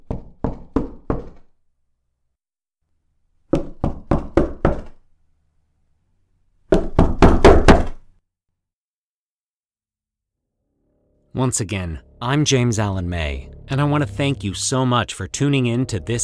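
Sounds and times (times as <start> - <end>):
knocking on a door: 0.0 - 1.5, 3.5 - 5.0, 6.7 - 8.0
speech: 11.4 - 16.2.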